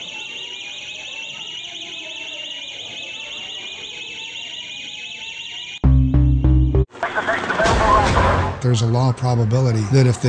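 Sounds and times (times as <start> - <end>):
busy noise: 0.0 - 5.8, 6.8 - 10.2
fire alarm blaring in a buzzing pulsing tone: 0.0 - 6.9
speech: 8.6 - 10.2.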